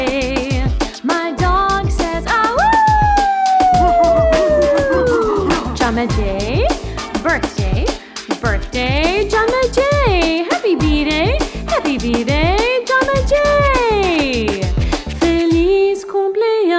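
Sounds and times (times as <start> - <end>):
busy music with rhythmic beats: 0.0 - 15.9
dog howling: 2.6 - 5.8.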